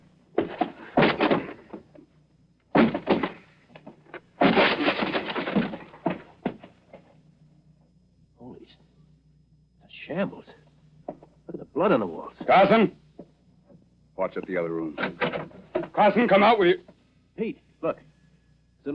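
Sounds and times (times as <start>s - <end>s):
door being forced open with heavy thumps and cracks: 0.4s - 1.8s, 2.7s - 3.5s, 4.4s - 6.7s, 15.0s - 16.0s
crashing scraping of a door giving way: 0.4s - 1.9s, 2.7s - 7.0s
speech: 10.2s - 10.4s, 11.8s - 13.0s, 14.3s - 18.0s.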